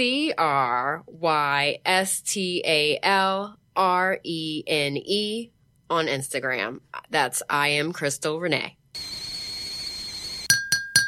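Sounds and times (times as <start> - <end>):
speech: 0.0 - 9.1
cups clinking together in a toast at tea time: 10.5 - 11.0.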